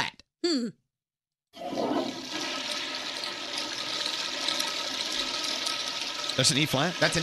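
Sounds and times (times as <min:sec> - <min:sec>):
speech: 0:00.6 - 0:00.8, 0:06.4 - 0:07.2
toilet flushing: 0:01.6 - 0:07.2.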